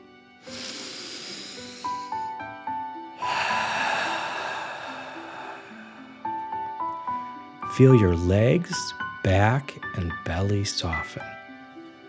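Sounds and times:
soft piano-like music: 0.0s - 12.0s
deep breath drawn in and blown out through the mouth: 0.4s - 2.5s, 3.1s - 7.4s
speech: 7.8s - 11.4s.

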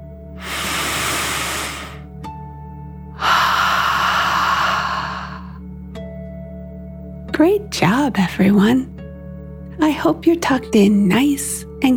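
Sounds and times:
exhale: 0.4s - 2.0s, 3.2s - 5.6s
deep breath in through the nose during a relaxation exercise: 0.4s - 2.1s, 3.2s - 5.6s
speech: 7.4s - 8.9s, 9.8s - 11.9s.

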